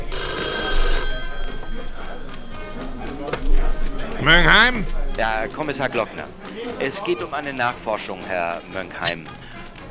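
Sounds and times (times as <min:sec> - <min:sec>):
telephone bell ringing: 0:00.1 - 0:04.2
speech: 0:04.2 - 0:09.4.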